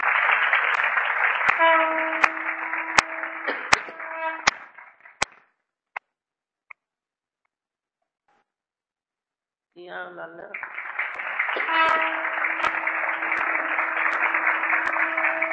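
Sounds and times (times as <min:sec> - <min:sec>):
crowd applauding: 0:00.0 - 0:05.3, 0:10.5 - 0:15.5
speech: 0:10.0 - 0:10.7.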